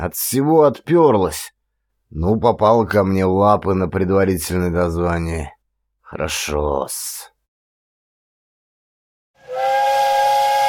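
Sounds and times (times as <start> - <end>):
speech: 0.0 - 7.3
steam whistle of a train approaching a station: 9.4 - 10.6.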